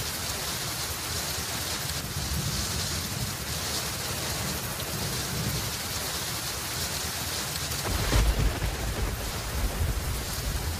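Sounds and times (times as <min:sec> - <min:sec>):
steady rain falling: 0:00.0 - 0:10.7
deep thump of thunder: 0:07.8 - 0:10.7.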